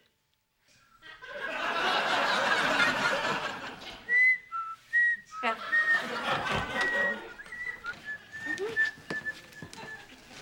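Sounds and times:
laughter: 1.0 - 4.2, 5.4 - 8.8
person whistling: 4.1 - 10.4.

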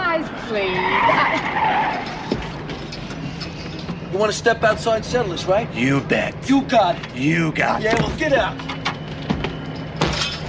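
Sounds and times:
car skidding to a stop with tires screeching: 0.0 - 5.6
speech: 0.5 - 1.6, 4.2 - 8.7.

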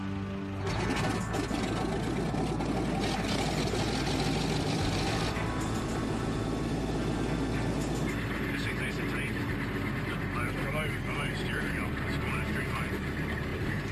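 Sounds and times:
CL215 aircraft engines being test-run outside after repairs: 0.0 - 13.9
indistinct voices: 5.4 - 13.8.

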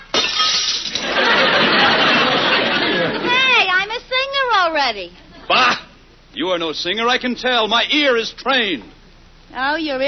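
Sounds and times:
glass shattering: 0.0 - 1.3
glass shards tinkling and clattering: 0.1 - 1.2
laughter: 1.0 - 3.5
speech: 4.9 - 5.8, 6.4 - 10.0.

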